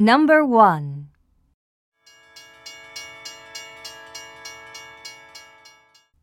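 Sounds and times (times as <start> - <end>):
speech: 0.0 - 0.9
railway crossing warning bell dinging: 2.1 - 6.2.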